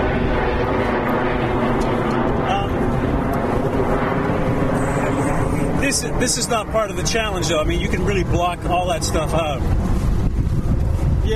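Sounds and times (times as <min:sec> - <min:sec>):
low-flying plane on approach to an airport: 0:00.0 - 0:11.3
speech: 0:05.9 - 0:09.9.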